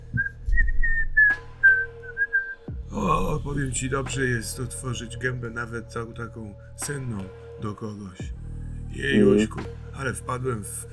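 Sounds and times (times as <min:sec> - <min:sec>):
seated man whistling a relaxed tune: 0:00.0 - 0:02.8
speech: 0:03.0 - 0:10.9.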